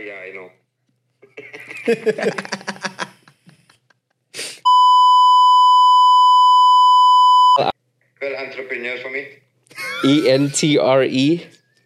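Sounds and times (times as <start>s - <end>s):
speech: 0.0s - 0.6s, 1.8s - 2.6s, 10.0s - 11.6s
laughter: 1.2s - 4.1s, 9.7s - 10.7s
censor bleep tone from a beep button: 4.7s - 7.7s.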